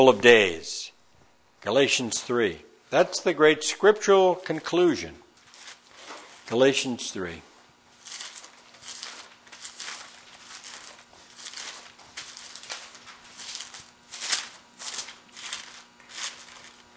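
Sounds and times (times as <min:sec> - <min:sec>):
speech: 0:00.0 - 0:00.8, 0:01.6 - 0:05.2, 0:06.5 - 0:07.5
thin Bible pages being turned: 0:05.4 - 0:06.5, 0:08.0 - 0:16.9.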